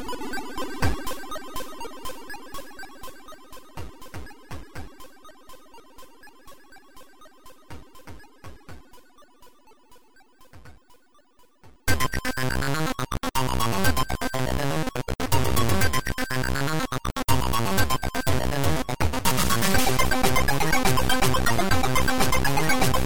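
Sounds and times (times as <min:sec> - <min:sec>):
ZX Spectrum-style chiptune music: 0:11.9 - 0:23.0.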